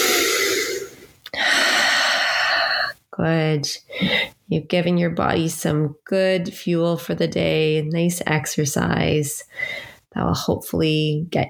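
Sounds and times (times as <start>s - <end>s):
slow breathing in and out during a relaxing exercise routine: 0.0s - 2.9s, 9.5s - 10.1s
speech: 3.2s - 11.4s.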